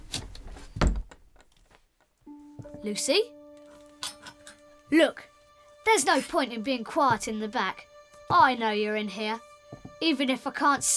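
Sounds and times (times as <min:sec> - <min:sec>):
large wardrobe door scraping: 0:00.0 - 0:01.5
speech: 0:02.8 - 0:03.4, 0:04.9 - 0:05.3, 0:05.9 - 0:10.9.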